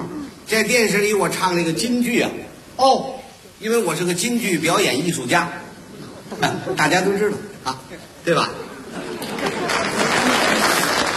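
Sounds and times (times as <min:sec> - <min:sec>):
speech: 0:00.5 - 0:05.6, 0:06.3 - 0:08.7
laughter: 0:06.0 - 0:11.1
applause: 0:09.3 - 0:11.1.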